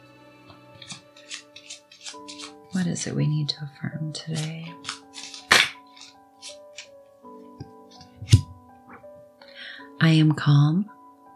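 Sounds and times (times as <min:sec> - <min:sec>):
deck of cards being shuffled: 0:00.8 - 0:03.0, 0:04.2 - 0:07.0, 0:07.7 - 0:08.5
speech: 0:02.8 - 0:04.9, 0:10.1 - 0:11.0.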